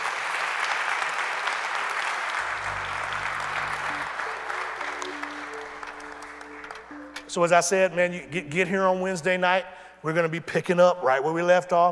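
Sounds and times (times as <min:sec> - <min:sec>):
room full of people applauding: 0:00.0 - 0:07.4
low organ-like tone: 0:02.4 - 0:09.0
speech: 0:07.4 - 0:11.9.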